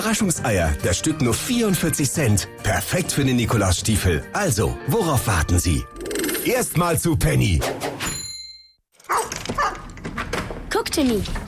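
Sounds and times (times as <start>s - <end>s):
speech: 0.0s - 7.9s, 10.9s - 11.4s
dog barking: 9.0s - 9.9s.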